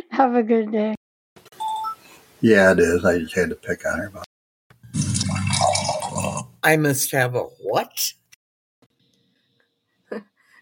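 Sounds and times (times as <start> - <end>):
speech: 0.2 - 1.0, 2.4 - 4.3, 6.6 - 8.2, 10.1 - 10.3
coffee pouring into a cup: 4.9 - 6.5.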